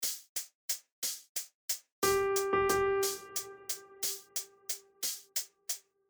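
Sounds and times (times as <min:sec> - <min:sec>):
sicilienne in triple time: 0:02.0 - 0:05.2.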